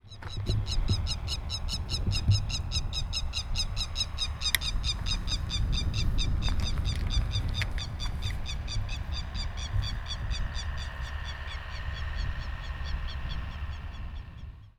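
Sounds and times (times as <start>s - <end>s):
bird song: 0.0s - 14.7s.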